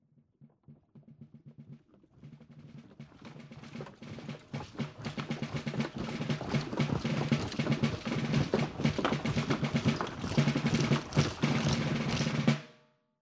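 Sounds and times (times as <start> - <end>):
marching: 2.1 - 12.7.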